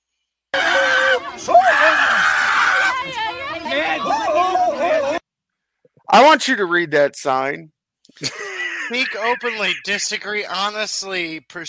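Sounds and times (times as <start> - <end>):
crowd of protesters shouting and screaming at one another: 0.6 - 5.2
speech: 6.1 - 11.6
laughter: 8.2 - 10.0.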